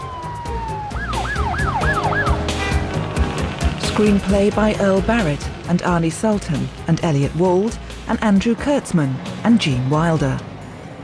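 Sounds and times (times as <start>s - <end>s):
ambulance siren speeding by: 0.0s - 3.6s
traffic rumble: 0.0s - 11.0s
speech: 4.0s - 10.5s.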